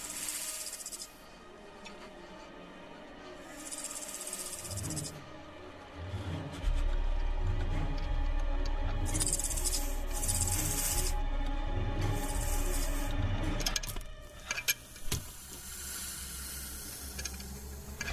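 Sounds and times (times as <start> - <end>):
snake hissing: 0.0 - 1.4, 3.4 - 5.2, 9.0 - 11.3, 12.0 - 13.1, 15.2 - 18.0
low droning background: 0.0 - 18.1.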